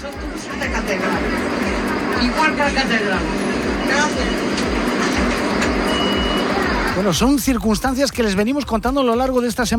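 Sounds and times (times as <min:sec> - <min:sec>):
steady rumbling bus engine drone: 0:00.0 - 0:07.4
babble of many passengers talking inside a packed city bus in Santiago de Compostela: 0:00.0 - 0:07.6
speech: 0:02.2 - 0:04.7, 0:07.0 - 0:09.7.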